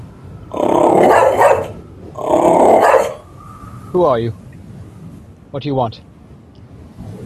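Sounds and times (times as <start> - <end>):
dog growling in low rumbling bursts: 0.5 - 3.2
speech: 3.9 - 4.4, 5.5 - 6.1.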